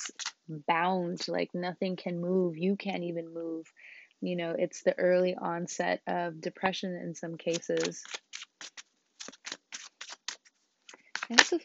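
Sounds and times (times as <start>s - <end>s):
tarot cards being shuffled: 0.0s - 0.4s, 7.5s - 11.6s
speech: 0.0s - 8.8s, 11.3s - 11.6s.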